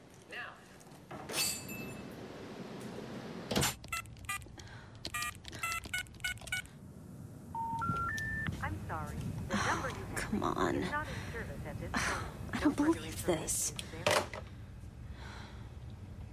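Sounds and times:
low hum: 0.0s - 16.3s
telephone keypad tones dialing a call in an office: 5.1s - 6.7s, 7.6s - 8.5s
speech: 10.3s - 14.0s.

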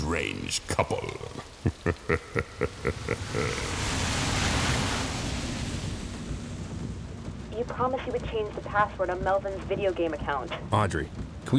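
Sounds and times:
heavy driving rain: 0.0s - 11.5s
speech: 0.1s - 4.1s, 7.7s - 11.5s
laughter: 0.7s - 4.0s
quick rhythmic thumps: 6.7s - 11.5s.

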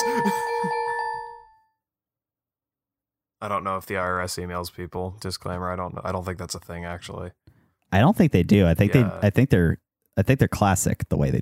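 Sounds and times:
email notification chime on a phone: 0.0s - 1.6s
speech: 3.4s - 11.4s.

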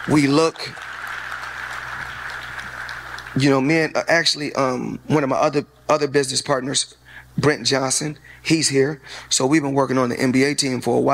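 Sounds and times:
speech: 0.0s - 0.9s, 3.4s - 11.1s
sizable audience applauding: 0.0s - 3.6s.

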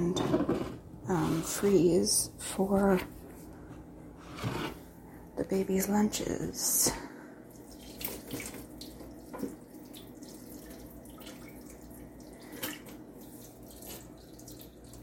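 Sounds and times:
speech: 0.0s - 3.2s, 5.5s - 7.1s
water drained from a pot of boiled sweet potatoes into a sink: 7.5s - 15.0s.

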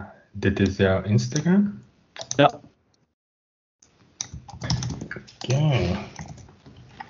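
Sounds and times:
speech: 0.0s - 1.8s, 2.4s - 2.6s
rapid computer keyboard typing: 2.2s - 2.6s, 4.2s - 6.5s.

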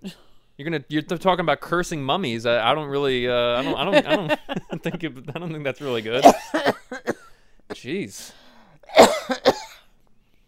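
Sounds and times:
speech: 0.0s - 7.0s, 7.7s - 9.7s
laughter: 3.6s - 6.6s
harsh coughs: 5.9s - 7.4s, 8.9s - 10.0s.

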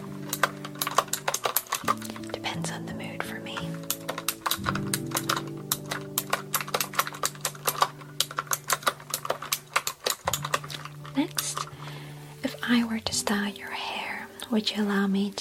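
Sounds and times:
clicky computer keyboard typing: 0.0s - 11.7s
soft whispering: 2.3s - 3.8s, 12.4s - 15.4s
speech: 14.5s - 15.4s.

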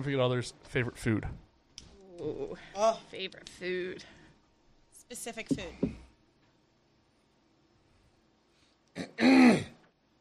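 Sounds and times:
speech: 0.0s - 1.4s, 2.2s - 4.2s, 5.1s - 6.0s, 9.0s - 9.7s
person clearing throat: 9.0s - 9.8s.

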